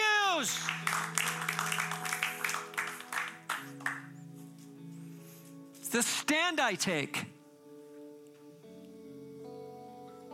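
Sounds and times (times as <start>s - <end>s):
speech: 0.4s - 1.0s, 5.9s - 7.3s
dense crowd applause: 0.4s - 4.2s.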